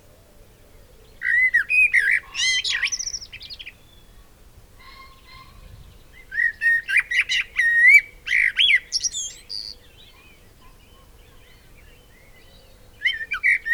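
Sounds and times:
Eurasian blackbird Turdus merula singing: 1.0s - 4.2s, 4.8s - 13.7s.

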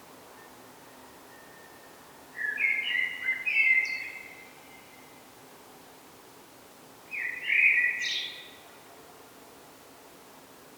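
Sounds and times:
common blackbird Turdus merula singing: 2.4s - 5.0s, 7.1s - 8.6s.

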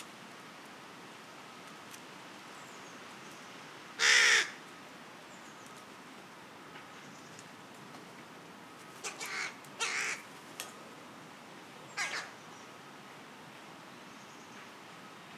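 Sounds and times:
carrion crow Corvus corone cawing: 4.0s - 4.6s, 9.0s - 10.3s, 12.0s - 12.4s.

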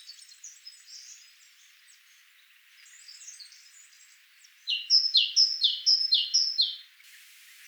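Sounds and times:
great tit Parus major two-note calls: 4.7s - 6.8s.

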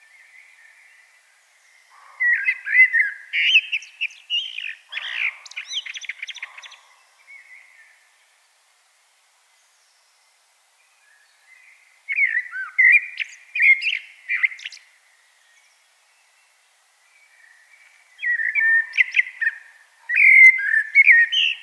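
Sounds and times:
common blackbird whistled song: 2.2s - 7.8s, 12.1s - 14.8s, 17.2s - 21.6s.

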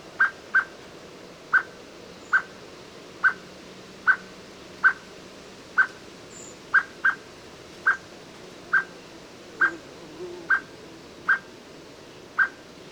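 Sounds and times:
steady background noise: 0.0s - 12.9s
common blackbird Turdus merula clicking call notes: 0.2s - 0.7s, 1.5s - 1.7s, 2.3s - 2.5s, 3.2s - 3.4s, 4.0s - 5.1s, 5.8s - 7.2s, 7.8s - 8.0s, 8.7s - 8.9s, 12.4s - 12.6s.

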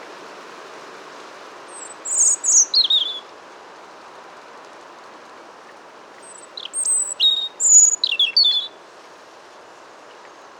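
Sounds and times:
European robin Erithacus rubecula tinkling phrases, thin whistles and rapid twittering: 1.7s - 3.2s, 6.2s - 8.8s.

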